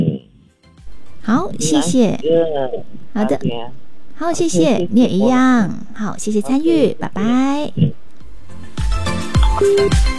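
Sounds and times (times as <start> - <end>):
speech: 1.3 - 8.0, 9.6 - 10.1
telephone ringtone announcing an incoming call: 9.3 - 10.1.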